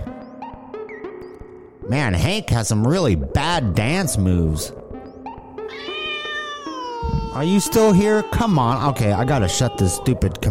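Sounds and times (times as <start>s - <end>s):
speech: 1.9s - 4.8s, 7.4s - 10.5s
cat giving a drawn-out rising meow: 5.7s - 10.4s.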